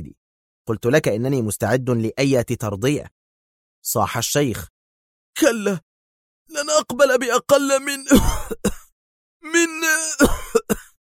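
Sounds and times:
speech: 0.7s - 3.2s, 3.8s - 4.8s, 5.4s - 5.9s, 6.5s - 8.8s, 9.4s - 10.8s
old man's violent coughing fit: 8.0s - 8.9s, 9.8s - 11.0s.

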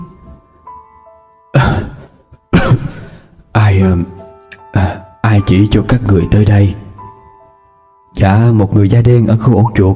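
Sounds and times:
weak old woman coughing after taking pills: 1.6s - 3.0s
speech: 3.8s - 4.1s, 4.8s - 6.8s, 8.2s - 9.9s.

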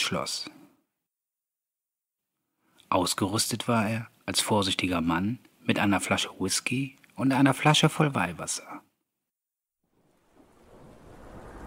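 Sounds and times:
speech: 0.1s - 0.6s, 2.9s - 8.9s
heavy rain in a thunderstorm: 10.0s - 11.6s
thunder rumbling: 10.0s - 11.6s.

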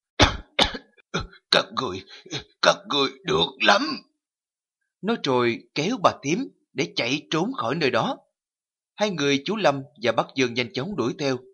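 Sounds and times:
old man coughing: 0.2s - 1.4s
speech: 1.6s - 4.1s, 5.0s - 8.2s, 9.0s - 11.5s.

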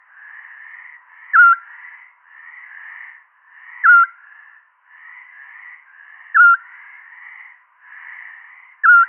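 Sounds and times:
Eurasian scops owl giving a short pure whistled call: 1.3s - 1.6s, 3.8s - 4.2s, 6.3s - 6.6s, 8.8s - 9.0s.

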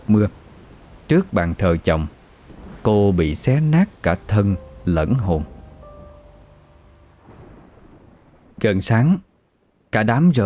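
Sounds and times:
speech: 0.1s - 0.4s, 1.1s - 2.2s, 2.8s - 5.5s, 8.6s - 9.3s, 9.9s - 10.4s
thunder rumbling during a storm without rain: 2.4s - 8.6s.

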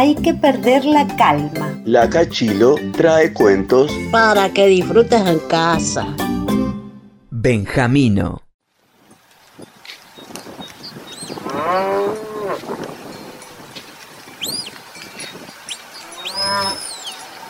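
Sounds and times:
speech: 0.0s - 6.3s, 7.4s - 8.4s
cows mooing on a farm: 11.4s - 13.6s, 15.9s - 17.4s
fainter higher cries: 16.2s - 17.1s.

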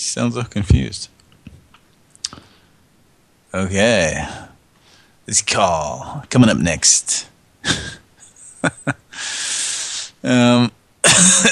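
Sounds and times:
speech: 0.1s - 1.2s, 3.6s - 4.4s, 5.3s - 7.8s, 8.6s - 9.0s, 10.2s - 11.5s
person coughing: 7.6s - 8.0s, 11.0s - 11.5s
raspy breathy throat clearing: 11.0s - 11.5s.

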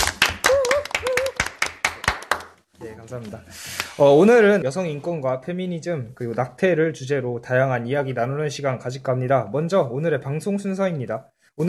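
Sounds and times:
small group clapping for club members: 0.0s - 2.7s
speech: 3.1s - 11.6s.

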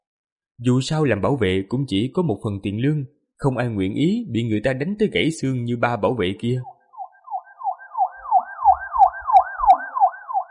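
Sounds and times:
speech: 0.6s - 6.8s
police car siren wailing: 6.6s - 10.4s.

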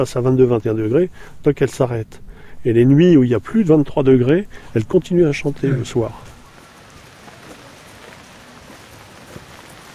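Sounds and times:
speech: 0.0s - 6.3s
rain falling outdoors: 5.4s - 9.9s.

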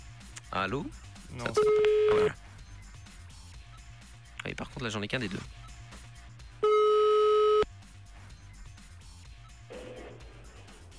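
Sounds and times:
speech: 0.5s - 2.4s, 4.4s - 5.6s
telephone ringback tone heard from the caller's end: 1.6s - 2.3s, 6.6s - 7.7s.

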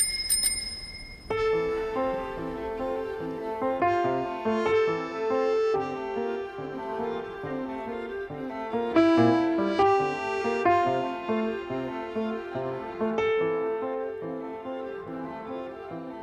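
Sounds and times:
old bicycle bell ringing: 0.0s - 1.8s
sustained, gently shifting musical tones: 1.0s - 16.2s.

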